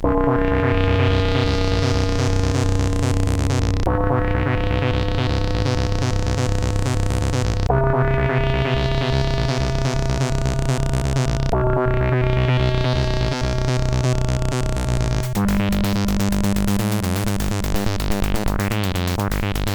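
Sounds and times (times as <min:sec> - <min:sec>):
brain waves sound effect: 0:00.0 - 0:19.6.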